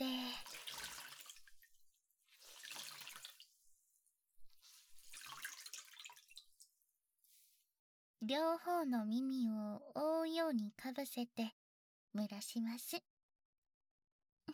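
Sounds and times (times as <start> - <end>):
towel soaked in hot water with citrus oil wrung out: 0.0 - 7.5
water dripping: 0.1 - 1.8, 2.4 - 3.6, 4.7 - 6.7
speech: 8.3 - 11.6, 12.2 - 13.1.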